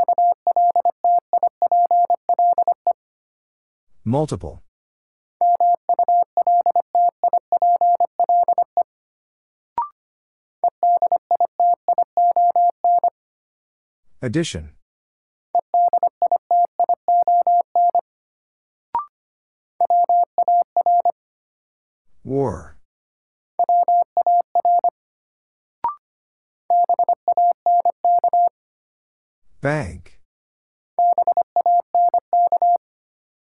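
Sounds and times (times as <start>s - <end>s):
steady mid-pitched Morse code beeps at 25wpm: 0.0s - 2.8s, 5.4s - 8.7s, 10.8s - 13.1s, 15.8s - 18.0s, 19.8s - 21.1s, 23.6s - 24.9s, 26.7s - 28.5s, 31.0s - 32.8s
person speaking: 4.1s - 4.6s, 14.2s - 14.8s, 22.2s - 22.8s, 29.6s - 30.2s.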